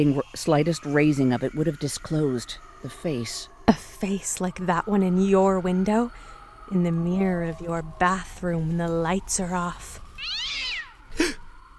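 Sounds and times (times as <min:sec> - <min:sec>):
speech: 0:00.0 - 0:10.3
cat meowing at a door: 0:10.2 - 0:11.0.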